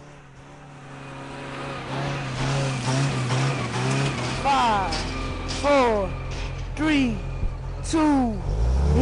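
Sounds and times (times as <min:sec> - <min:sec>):
flamethrower truck engines rumbling and revving along a sugarcane field: 0:00.0 - 0:09.0
indistinct voices: 0:04.2 - 0:09.0.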